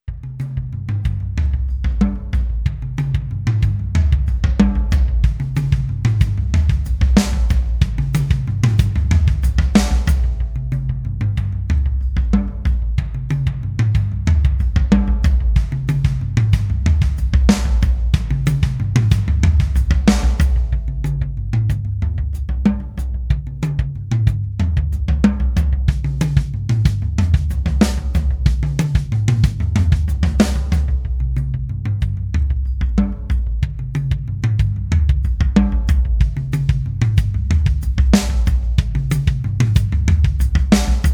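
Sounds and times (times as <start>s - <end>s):
tom drums mixed: 0.0s - 41.1s.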